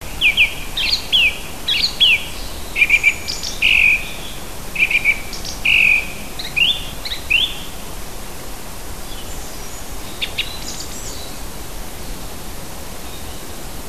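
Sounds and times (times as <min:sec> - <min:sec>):
steady background hiss: 0:00.0 - 0:13.8
native bird singing in June: 0:00.1 - 0:07.7, 0:09.1 - 0:11.4.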